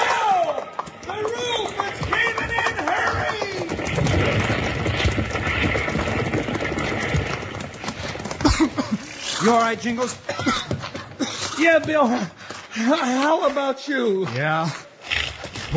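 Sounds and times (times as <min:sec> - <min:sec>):
horses whinnying freed from a burning livery stable: 0:00.0 - 0:11.7
horses' hooves clattering: 0:00.0 - 0:15.7
speech: 0:09.4 - 0:10.7, 0:11.6 - 0:14.8.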